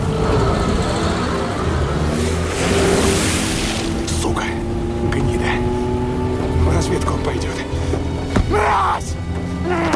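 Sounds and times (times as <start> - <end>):
chauffeur-driven car engine pulling off in the rain: 0.0 - 9.9.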